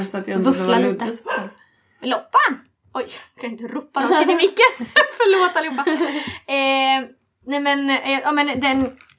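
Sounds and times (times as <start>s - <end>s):
speech: 0.0s - 9.1s
single sharp dog bark: 1.2s - 1.6s
laughter: 4.0s - 6.4s.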